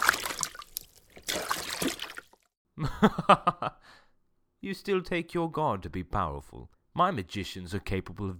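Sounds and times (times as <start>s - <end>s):
river water splashing and sloshing from a staff striking it: 0.0s - 2.6s
speech: 2.8s - 3.5s, 4.7s - 8.3s
laughter: 2.8s - 3.8s.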